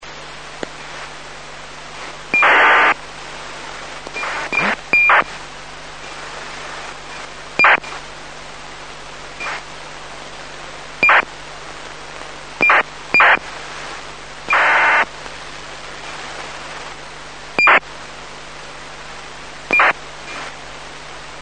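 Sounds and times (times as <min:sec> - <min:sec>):
VHF ACARS radio data signal: 0:01.9 - 0:03.0, 0:03.6 - 0:05.4, 0:06.0 - 0:08.1, 0:09.4 - 0:09.7, 0:11.0 - 0:11.3, 0:12.6 - 0:15.1, 0:17.6 - 0:17.9, 0:19.7 - 0:20.6.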